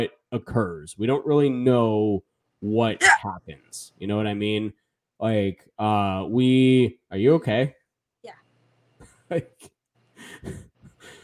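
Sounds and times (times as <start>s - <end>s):
speech: 0.0s - 8.4s, 9.3s - 10.7s
hiccups: 3.0s - 3.3s.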